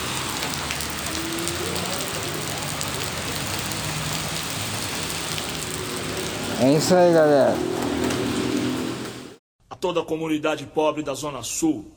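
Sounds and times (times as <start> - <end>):
cars passing: 0.0 - 9.4
steady rain: 0.0 - 9.4
speech: 6.6 - 7.7, 9.8 - 11.9.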